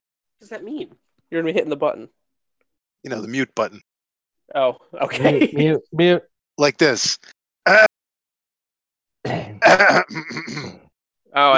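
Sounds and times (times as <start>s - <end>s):
speech: 0.4s - 2.2s, 3.0s - 3.9s, 4.5s - 8.0s, 9.2s - 11.5s
person coughing harshly: 9.3s - 10.8s.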